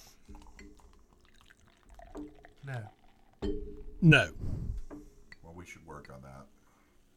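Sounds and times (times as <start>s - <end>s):
liquid pouring into glasses: 0.0s - 5.4s
soft drips: 0.0s - 6.9s
speech: 2.2s - 4.5s.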